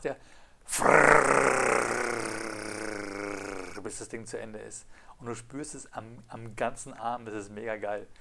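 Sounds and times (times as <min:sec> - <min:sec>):
speech: 0:00.0 - 0:00.9, 0:03.9 - 0:08.2
voice imitating buzzing mechanical alarm of 1960s Jaeger-LeCoultre wristwatch: 0:00.7 - 0:03.8.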